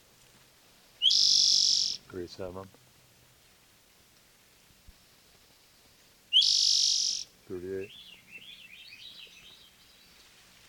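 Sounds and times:
Swainson's thrush singing a high whistled note: 1.0s - 2.0s, 6.3s - 7.2s
speech: 2.1s - 2.8s.

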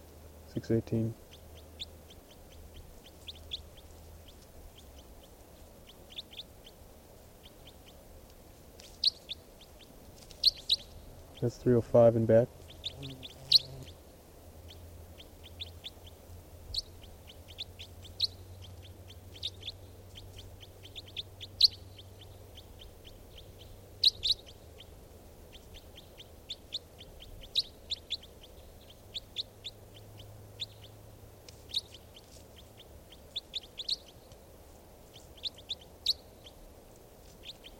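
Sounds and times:
speech: 0.6s - 1.2s, 11.4s - 13.3s
recorded bird call chirps: 1.3s - 6.8s, 8.8s - 11.7s, 12.6s - 14.0s, 14.6s - 31.0s, 31.6s - 34.4s, 35.1s - 36.6s.

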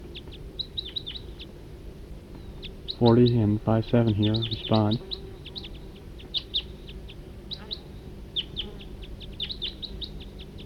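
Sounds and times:
small wild bird chirping high bright notes: 0.1s - 1.6s, 2.3s - 3.5s, 4.1s - 10.6s
speech: 3.0s - 5.2s.

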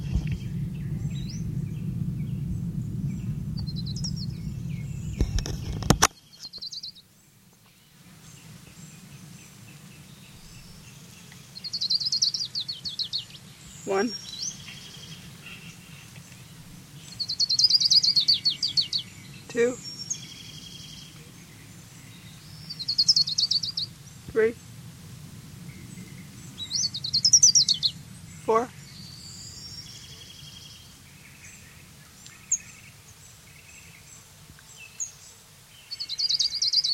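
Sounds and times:
steady low rumble: 0.0s - 6.2s, 8.2s - 32.1s
orange-crowned warbler singing high thin trills: 0.0s - 7.1s, 8.2s - 36.9s.

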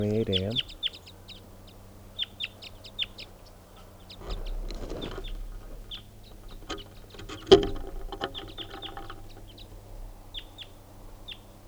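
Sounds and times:
deep-voiced wild bird chirping: 0.0s - 11.5s
brief rustle: 3.8s - 10.2s.

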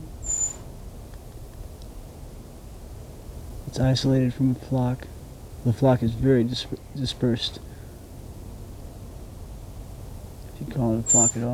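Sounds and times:
brown creeper call: 0.0s - 0.7s, 11.0s - 11.5s
speech: 3.7s - 7.7s, 10.8s - 11.5s.

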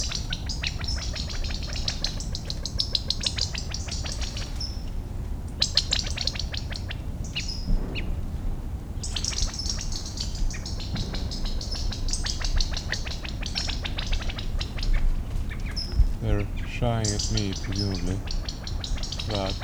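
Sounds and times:
half-grown quail chicks calling while moving through a buckeye in brush: 0.0s - 8.1s, 8.9s - 19.6s
speech: 16.8s - 18.4s, 19.3s - 19.6s.

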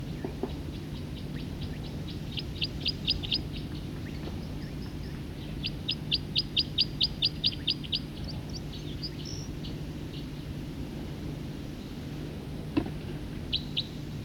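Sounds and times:
low steady hum: 0.0s - 14.2s
songbird chirping: 0.1s - 10.3s.

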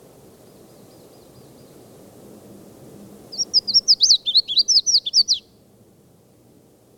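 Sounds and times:
Red-faced Warbler twittering song while flying from tree to tree: 0.4s - 2.0s, 3.3s - 5.6s.

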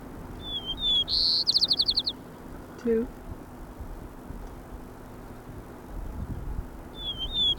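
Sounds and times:
white-crowned sparrow song: 0.4s - 2.2s, 6.9s - 7.5s
speech: 2.8s - 3.2s.

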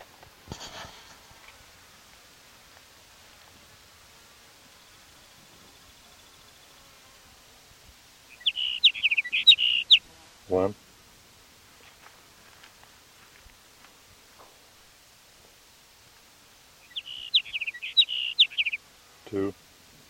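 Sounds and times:
soft hiss: 0.0s - 20.0s
scratchy noise: 0.4s - 1.5s
thin high chirps of a sage sparrow: 8.3s - 10.0s, 16.8s - 18.8s
sage sparrow song: 8.3s - 10.1s, 16.8s - 18.8s
speech: 10.5s - 10.8s.

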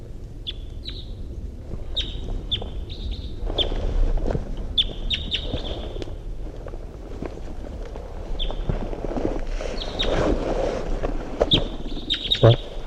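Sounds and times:
wind noise: 0.0s - 12.8s
wild bird chirping in flight: 0.4s - 1.2s, 1.9s - 3.8s, 4.8s - 6.0s, 8.4s - 8.7s, 11.5s - 12.8s.

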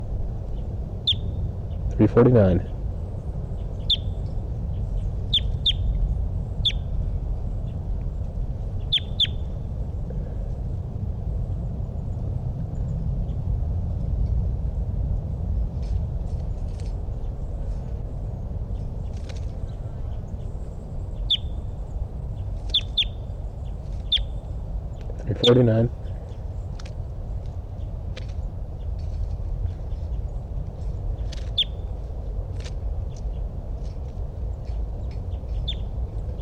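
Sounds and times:
steady low hum: 0.0s - 36.3s
short high bird chirps recorded in the field: 1.0s - 1.4s, 3.6s - 4.3s, 5.3s - 6.0s, 6.6s - 6.9s, 8.8s - 9.5s, 18.8s - 24.6s, 31.2s - 31.9s, 34.6s - 36.3s
speech: 2.0s - 2.7s.

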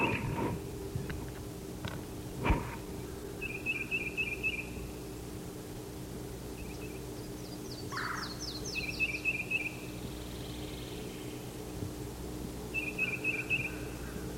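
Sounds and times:
steady low rumble: 0.0s - 14.3s
yellow-throated warbler singing: 3.0s - 5.0s, 6.5s - 11.7s, 12.6s - 14.3s
short twittering trill from another bird: 3.4s - 5.0s, 6.5s - 11.5s, 12.7s - 14.3s.

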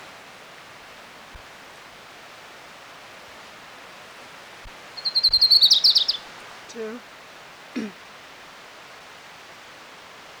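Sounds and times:
orange-crowned warbler song: 5.0s - 7.0s
speech: 6.8s - 7.1s.

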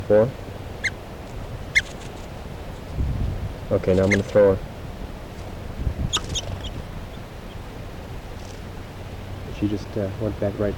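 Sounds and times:
bird calling while held in hand before release: 0.0s - 3.0s, 3.6s - 9.4s
hiss: 0.0s - 10.7s
speech: 0.1s - 0.4s, 3.7s - 4.7s, 9.6s - 10.7s.

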